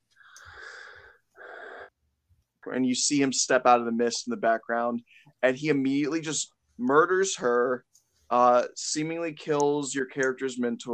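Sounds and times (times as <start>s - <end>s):
voice imitating a mechanical respirator's raspy breathing: 0.3s - 1.9s
speech: 2.6s - 10.9s.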